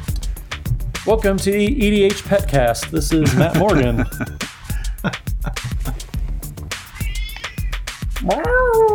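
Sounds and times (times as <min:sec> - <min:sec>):
busy rhythmic clattering: 0:00.0 - 0:08.4
speech: 0:01.0 - 0:05.2, 0:08.3 - 0:08.6
laughter: 0:03.1 - 0:06.1
cat meowing loudly: 0:06.9 - 0:08.9
faint higher-pitched cry: 0:07.0 - 0:08.9.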